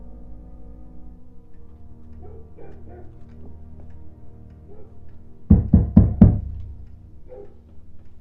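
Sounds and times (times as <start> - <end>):
firm knocking on a wooden door: 5.5 - 6.9.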